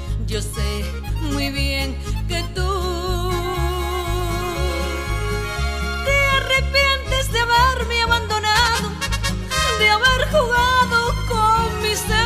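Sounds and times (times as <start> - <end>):
Spanish singer singing: 0.2 - 9.0, 9.5 - 12.2.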